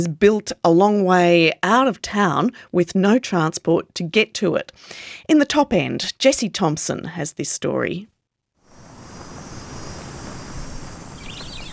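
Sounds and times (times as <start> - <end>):
speech: 0.0 - 8.1
cicadas droning on a searing hot morning in the suburbs of Darwin: 8.6 - 11.7
faint chirps: 8.7 - 11.7.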